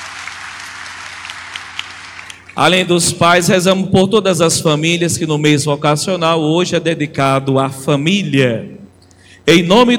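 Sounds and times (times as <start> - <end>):
church congregation applauding during a service: 0.0 - 2.6
sharp individual claps: 0.0 - 2.6
speech: 2.6 - 8.8, 9.5 - 9.9.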